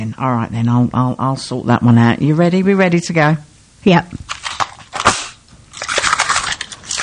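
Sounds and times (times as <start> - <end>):
speech: 0.0 - 4.2
crinkling rustling cracker paper: 4.3 - 7.0
Christmas cracker pulled with a bang: 4.6 - 7.0.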